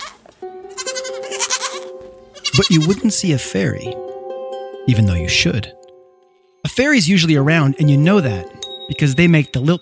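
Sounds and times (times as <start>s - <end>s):
goat bleating: 0.0s - 3.1s
speech: 2.6s - 4.1s, 4.8s - 5.8s, 6.8s - 9.8s.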